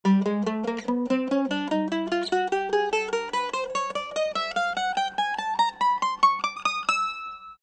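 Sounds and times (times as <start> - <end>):
mandolin: 0.0 - 7.6.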